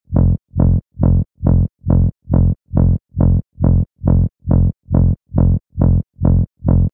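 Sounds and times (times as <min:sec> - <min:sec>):
reversed bass loop in F: 0:00.1 - 0:06.9.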